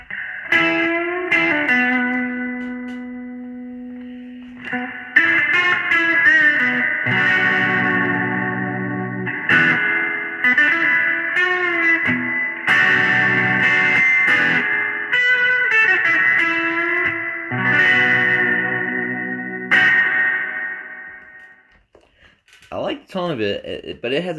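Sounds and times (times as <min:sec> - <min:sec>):
electric guitar through amp with spring reverb playing chords and single notes: 0:00.0 - 0:21.8
speech: 0:23.4 - 0:24.3.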